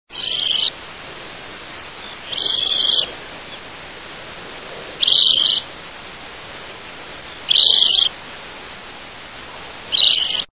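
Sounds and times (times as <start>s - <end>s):
Western Sandpiper singing: 0.1s - 0.9s, 1.5s - 3.8s, 5.0s - 6.1s, 7.0s - 8.2s, 9.9s - 10.5s.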